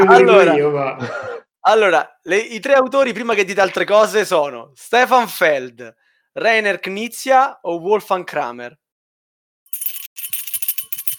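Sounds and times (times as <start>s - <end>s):
laughter: 0.0s - 1.4s
speech: 0.0s - 8.8s
small bell ringing: 9.7s - 11.1s.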